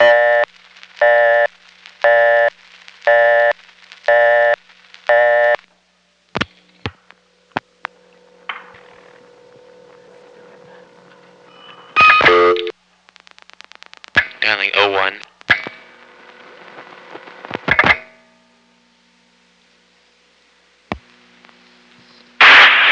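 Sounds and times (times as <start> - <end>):
loud telephone tone burst: 0.0 - 2.5, 11.5 - 12.7
low telephone line hum: 0.0 - 22.9
recorded telephone voice announcement: 14.4 - 15.2.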